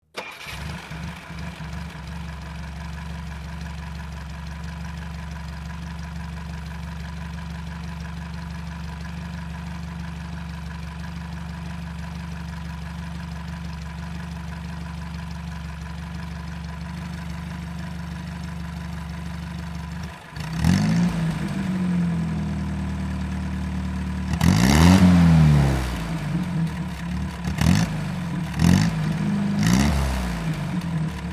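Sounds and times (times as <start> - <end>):
army jeep engine starting and revving: 0.2 - 2.0, 20.4 - 23.1, 24.1 - 31.3.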